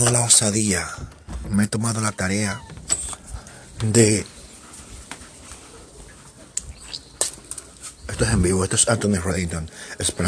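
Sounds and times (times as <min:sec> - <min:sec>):
speech: 0:00.0 - 0:02.7, 0:03.8 - 0:04.4, 0:08.2 - 0:10.2
small bird chirping: 0:06.6 - 0:08.4.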